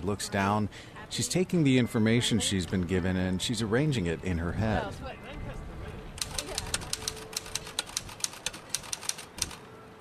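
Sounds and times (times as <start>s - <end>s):
speech: 0.0s - 5.4s
typewriter keys clacking: 6.2s - 9.6s.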